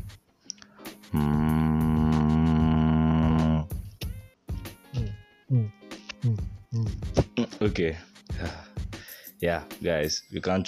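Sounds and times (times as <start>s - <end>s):
person humming one steady buzzy note: 1.0s - 3.9s, 4.9s - 7.6s
speech: 7.8s - 8.6s, 9.4s - 10.6s.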